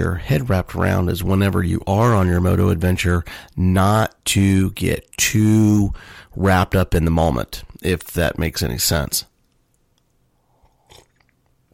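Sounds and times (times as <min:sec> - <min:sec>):
speech: 0:00.0 - 0:09.3
small mouth and swallowing clicks: 0:09.3 - 0:11.7
airy slurp of sipping coffee: 0:10.4 - 0:11.7.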